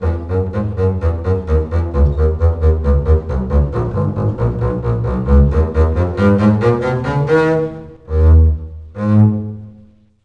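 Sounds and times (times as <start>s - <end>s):
double bass: 0.0s - 10.2s.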